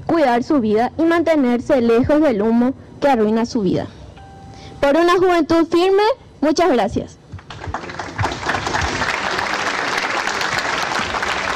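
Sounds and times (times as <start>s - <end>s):
speech: 0.1s - 4.0s, 4.8s - 7.2s
audience applause after a speech: 7.4s - 11.5s.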